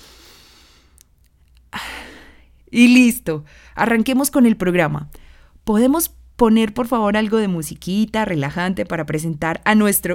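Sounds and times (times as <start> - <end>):
woman taking a deep breath: 0.0 - 1.0, 3.5 - 3.8, 5.2 - 5.6
speech: 2.7 - 10.1.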